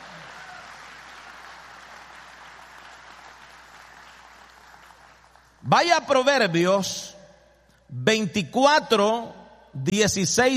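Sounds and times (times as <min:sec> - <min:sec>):
worship audience applauding: 0:00.0 - 0:05.6
speech: 0:05.6 - 0:07.2, 0:08.0 - 0:10.5.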